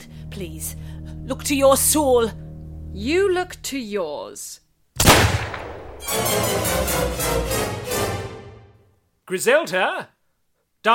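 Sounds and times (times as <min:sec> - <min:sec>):
speech: 0:00.4 - 0:04.6, 0:06.1 - 0:07.8, 0:09.3 - 0:10.2
gunfire in a convent: 0:05.0 - 0:06.1.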